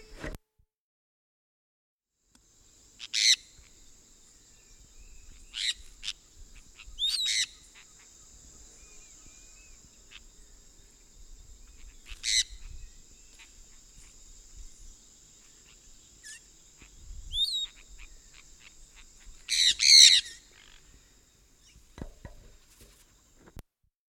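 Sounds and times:
high-pitched hiss: 2.4 - 23.5
sun parakeet screeching: 3.1 - 3.4, 12.1 - 12.6, 19.5 - 20.8.

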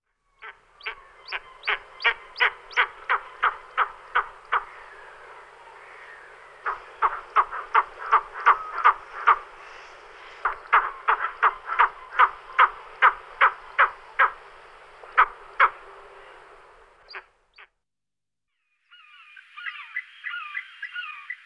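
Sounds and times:
white-tailed eagle calling: 0.4 - 17.3.

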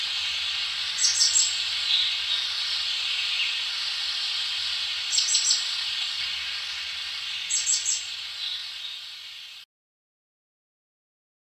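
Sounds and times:
Sri Lanka hanging parrot calls: 0.0 - 9.1
steady hiss: 0.0 - 9.6.

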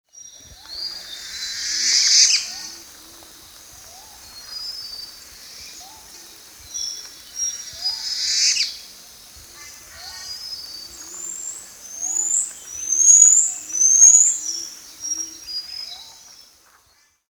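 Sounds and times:
cerulean cuckooshrike: 0.4 - 17.2.

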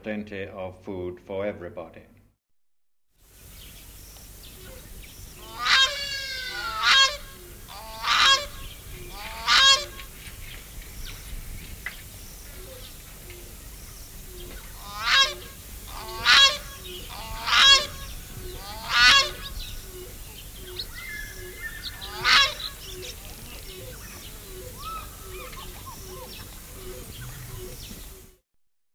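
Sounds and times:
speech: 0.0 - 2.2
faint insects: 3.2 - 28.4
large bird calling outdoors with harsh honking notes: 5.4 - 10.2, 14.7 - 27.9.

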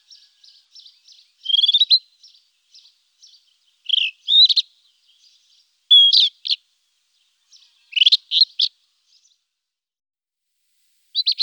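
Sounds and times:
rufous-tailed scrub robin singing clear whistles and warbled notes: 0.8 - 6.6, 7.9 - 8.7, 11.2 - 11.4.

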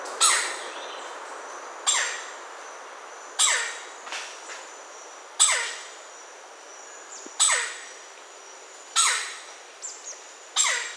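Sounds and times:
Red-necked Woodpecker calling: 0.2 - 0.9, 1.9 - 2.4, 3.3 - 3.9, 5.4 - 6.0, 7.4 - 8.0, 8.9 - 9.5, 10.5 - 10.9.

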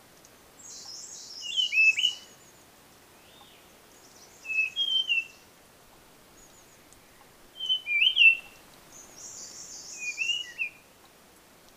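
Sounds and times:
blue-fronted robin uttering whistled slurred phrases: 4.5 - 5.3, 7.6 - 8.4, 10.0 - 10.8.

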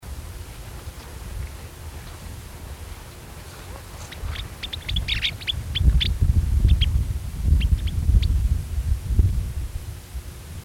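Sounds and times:
puna plover calling: 0.0 - 8.4.

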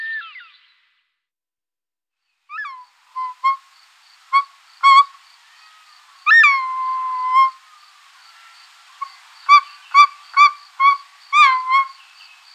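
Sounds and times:
short-toed snake eagle whistling: 2.5 - 3.6, 6.3 - 7.9, 8.5 - 12.4.

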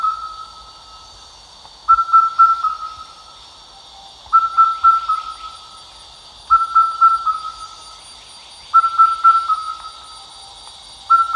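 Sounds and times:
Indian cuckoo calling: 0.0 - 1.0, 1.9 - 3.2, 4.3 - 5.8, 6.5 - 8.0, 8.7 - 11.3.

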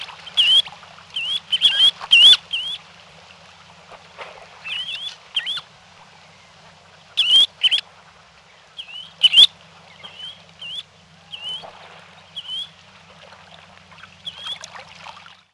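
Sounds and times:
semipalmated plover giving upslurred whistled calls: 0.0 - 2.8, 4.6 - 7.8, 8.5 - 12.8, 14.0 - 14.7.

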